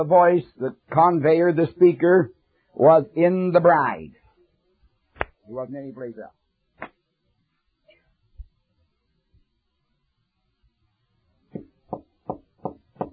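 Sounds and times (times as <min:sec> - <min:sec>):
speech: 0:00.0 - 0:04.2, 0:05.5 - 0:06.4
sharp knocks on a door: 0:11.5 - 0:13.1.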